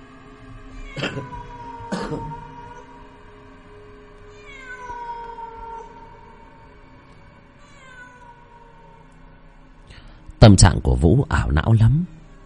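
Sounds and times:
stray cat meowing: 0:00.7 - 0:03.1, 0:04.3 - 0:06.4, 0:07.6 - 0:09.0
speech: 0:01.0 - 0:01.4, 0:02.1 - 0:02.4, 0:10.5 - 0:12.2.

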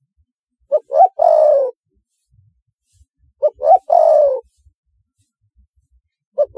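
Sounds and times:
spotted dove cooing: 0:00.7 - 0:01.8, 0:03.4 - 0:04.6, 0:06.4 - 0:06.5.

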